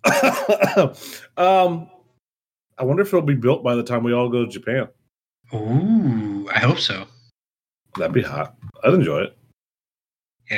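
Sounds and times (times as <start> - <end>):
person coughing: 0.0 - 1.0
speech: 0.2 - 2.0, 2.8 - 7.2, 7.9 - 9.4.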